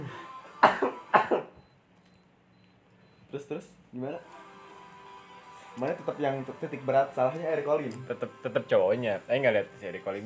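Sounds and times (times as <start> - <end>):
person coughing: 0.6 - 1.6
speech: 3.3 - 4.4, 5.8 - 10.2.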